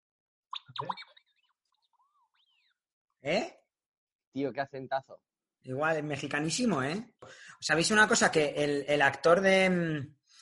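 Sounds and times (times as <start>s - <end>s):
robot droid beeping and whistling: 0.6s - 1.2s
speech: 0.8s - 1.2s, 3.2s - 3.6s, 4.4s - 10.4s.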